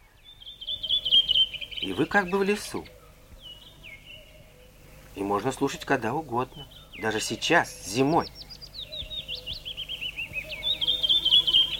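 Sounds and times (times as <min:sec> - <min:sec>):
distant cuckoo calling: 0:00.0 - 0:11.7
morning bird chorus in a birch grove near Leningrad in early May: 0:00.0 - 0:11.7
speech: 0:01.8 - 0:03.0, 0:05.2 - 0:08.4.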